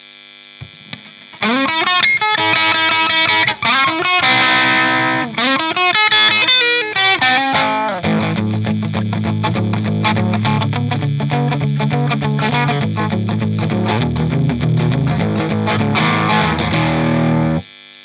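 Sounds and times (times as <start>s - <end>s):
rock guitar melody on neck and bridge pickups: 0.7s - 17.6s.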